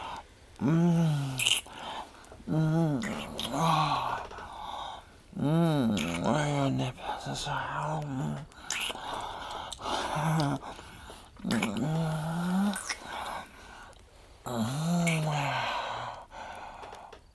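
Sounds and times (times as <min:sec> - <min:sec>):
speech: 0:00.6 - 0:01.2
person making throaty growling noises imitating an animal: 0:00.6 - 0:01.8, 0:02.5 - 0:04.4, 0:05.3 - 0:09.0, 0:09.8 - 0:10.8, 0:11.4 - 0:13.4, 0:14.4 - 0:16.2
short breaths between growls: 0:01.7 - 0:02.4, 0:03.6 - 0:05.2, 0:08.5 - 0:11.4, 0:13.0 - 0:17.2.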